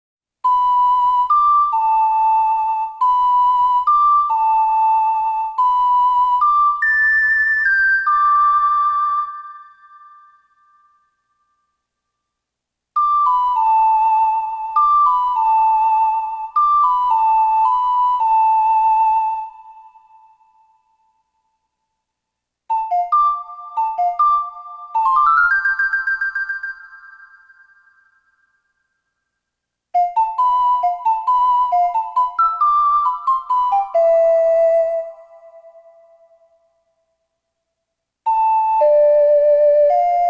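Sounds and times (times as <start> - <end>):
ocarina melody: 0.5 - 10.3, 13.0 - 20.8, 22.7 - 28.2, 30.0 - 36.6, 38.3 - 40.2.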